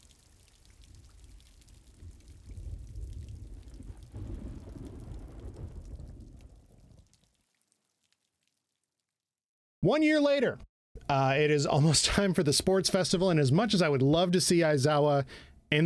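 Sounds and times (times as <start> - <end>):
steady rain hissing: 0.0 - 6.8
deep distant thunder rumbling: 0.9 - 7.0
speech: 9.9 - 15.8.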